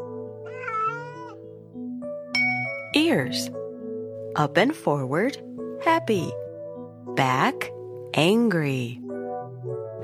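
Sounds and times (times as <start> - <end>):
kitten meowing: 0.5 - 1.4
speech: 3.0 - 3.6, 4.4 - 6.4, 7.1 - 9.0.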